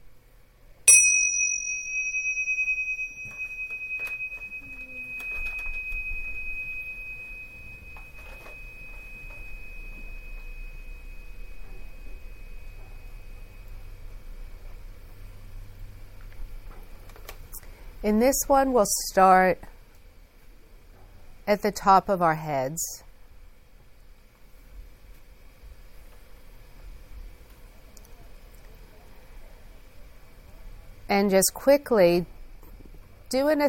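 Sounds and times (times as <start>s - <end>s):
meditation bell ringing: 0.9s - 14.1s
speech: 18.0s - 19.7s, 21.5s - 23.0s, 31.1s - 32.3s, 33.3s - 33.6s.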